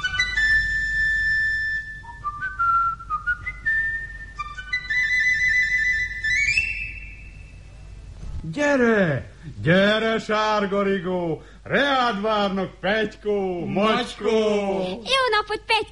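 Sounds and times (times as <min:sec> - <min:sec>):
person whistling to call a bird: 0:00.0 - 0:04.6
faint hiss: 0:00.0 - 0:15.9
speech: 0:08.6 - 0:15.9.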